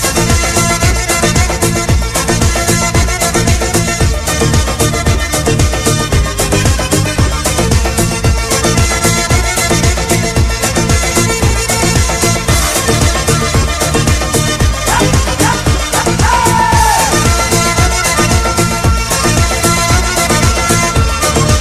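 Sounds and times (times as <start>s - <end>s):
accordion: 0.0s - 21.6s.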